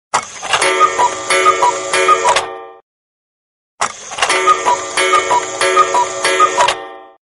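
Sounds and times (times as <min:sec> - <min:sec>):
cuckoo clock: 0:00.5 - 0:02.6, 0:04.1 - 0:07.2.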